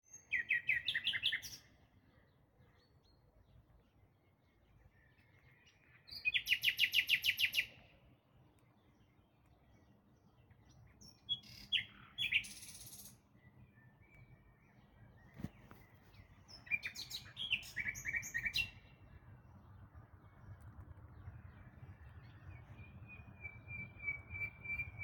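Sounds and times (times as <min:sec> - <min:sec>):
nightingale singing loudly: 0:00.1 - 0:01.8, 0:05.6 - 0:07.8, 0:11.0 - 0:15.5, 0:16.5 - 0:19.0, 0:22.4 - 0:25.0.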